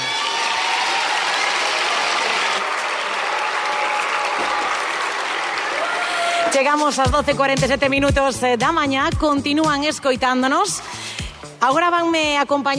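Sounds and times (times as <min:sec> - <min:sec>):
audience applause of many hands clapping: 0:00.0 - 0:06.8
speech: 0:06.5 - 0:12.7.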